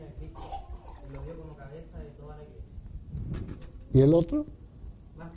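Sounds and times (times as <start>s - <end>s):
person gulping a sip of water: 0.4s - 1.4s
speech: 1.7s - 4.6s.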